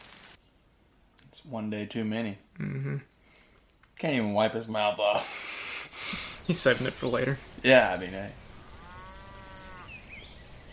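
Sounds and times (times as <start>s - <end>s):
steady outdoor noise: 0.0s - 10.7s
speech: 1.4s - 3.1s, 4.0s - 5.5s, 6.5s - 8.4s
cow mooing: 8.5s - 10.0s.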